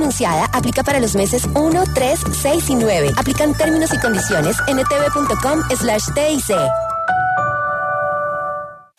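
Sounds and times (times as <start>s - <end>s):
speech: 0.1s - 6.9s
bright chime-like tones: 1.7s - 8.8s.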